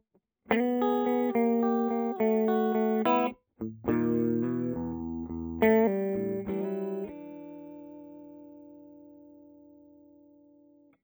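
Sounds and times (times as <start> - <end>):
clean middle blues guitar: 0.5 - 10.9.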